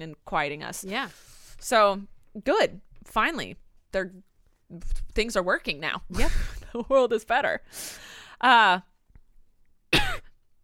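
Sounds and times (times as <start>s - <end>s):
speech: 0.0s - 8.9s
person coughing: 9.9s - 10.4s.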